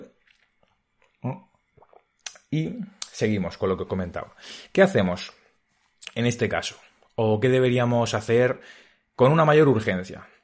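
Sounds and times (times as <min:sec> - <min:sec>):
speech: 0:01.2 - 0:01.5, 0:02.5 - 0:05.4, 0:06.0 - 0:10.4
person sipping and swallowing water: 0:01.8 - 0:02.4
soft wet mouth clicks: 0:01.8 - 0:03.2
short breathy exhale: 0:04.4 - 0:04.7.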